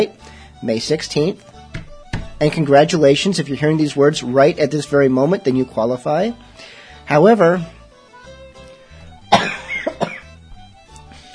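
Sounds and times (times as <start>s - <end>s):
speech: 0.0s - 1.8s, 2.4s - 7.8s
person coughing and clearing throat: 9.3s - 10.3s.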